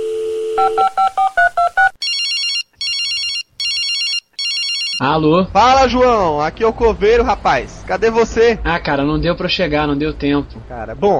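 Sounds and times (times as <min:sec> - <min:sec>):
bright electronic telephone ringing: 0:00.0 - 0:05.0
telephone dial tone: 0:00.0 - 0:05.0
speech: 0:00.6 - 0:01.3, 0:05.0 - 0:11.1.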